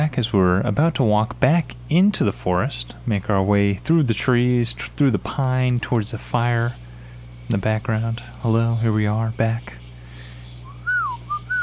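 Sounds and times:
speech: 0:00.0 - 0:06.8, 0:07.5 - 0:09.8
bird chirping clear whistled swooping notes: 0:08.0 - 0:11.6.

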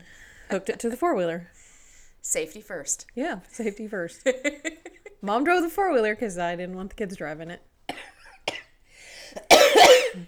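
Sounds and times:
speech: 0:00.5 - 0:01.6, 0:02.3 - 0:07.7
person coughing harshly: 0:09.4 - 0:10.2.

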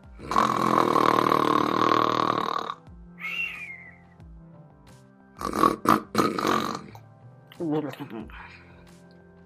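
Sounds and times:
person imitating loud snoring with snorts and grunts: 0:00.0 - 0:02.9, 0:05.4 - 0:07.0.

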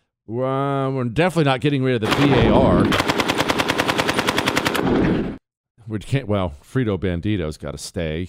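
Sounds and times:
speech: 0:00.3 - 0:03.2, 0:05.9 - 0:08.2
MG42 machine gun burst with tail: 0:02.1 - 0:05.4.

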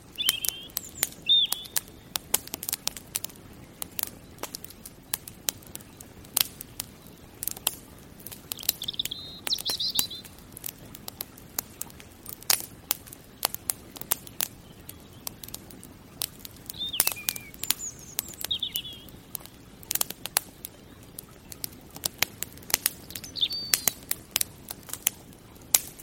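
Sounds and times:
fireplace fire crackling and popping: 0:00.0 - 0:26.0
bird chirping: 0:00.1 - 0:01.9, 0:08.6 - 0:10.4, 0:16.7 - 0:19.2, 0:22.9 - 0:24.0.

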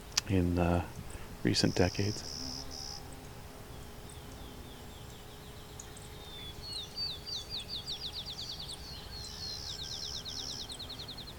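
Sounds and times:
steady outdoor hiss: 0:00.0 - 0:11.3
speech: 0:00.3 - 0:02.4
sparrow singing a high rapid trill: 0:00.9 - 0:11.3.

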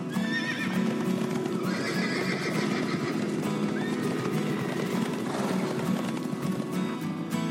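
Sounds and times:
horse neighing and whinnying: 0:00.1 - 0:05.9
horse hooves clip-clopping: 0:00.1 - 0:07.4.

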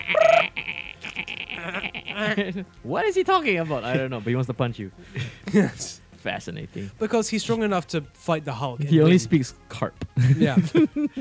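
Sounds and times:
voice mimicking dolphin whistles, clicks and chirps: 0:00.0 - 0:02.2
laughter: 0:01.1 - 0:02.7, 0:03.4 - 0:04.4, 0:05.1 - 0:05.9, 0:10.1 - 0:11.2
speech: 0:02.2 - 0:11.2.

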